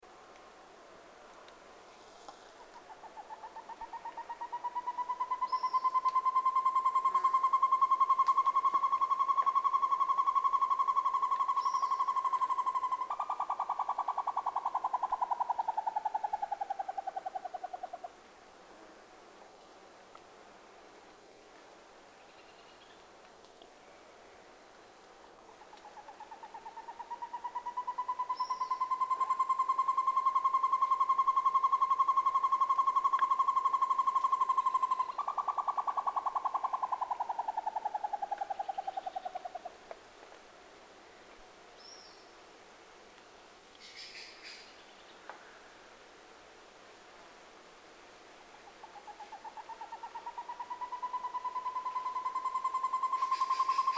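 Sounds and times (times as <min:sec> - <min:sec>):
tovaca-campainha singing: 0:02.6 - 0:18.1, 0:25.6 - 0:39.7, 0:41.8 - 0:42.3, 0:43.8 - 0:45.2, 0:48.6 - 0:53.9.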